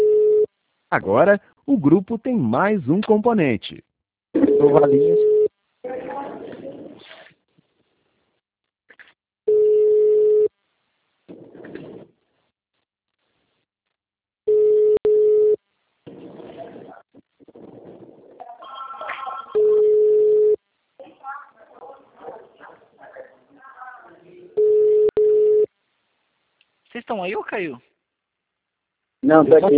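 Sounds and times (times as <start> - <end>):
outgoing phone call ringback tones: 0.0 - 0.5, 4.4 - 5.5, 9.5 - 10.5, 14.5 - 15.6, 19.6 - 20.6, 24.6 - 25.7
speech: 0.9 - 3.9, 4.6 - 5.2, 27.1 - 27.9, 29.3 - 29.7.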